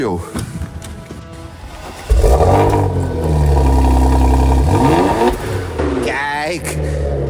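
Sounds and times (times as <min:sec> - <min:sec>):
speech: 0:00.0 - 0:00.6
car engine cranking, idling and revving: 0:01.7 - 0:07.2.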